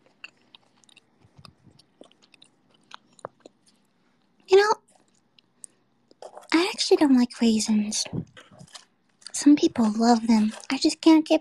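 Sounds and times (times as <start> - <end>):
crunchy chewing of a cookie: 0.0 - 6.6, 8.2 - 9.4
speech: 6.9 - 8.4, 9.4 - 11.3.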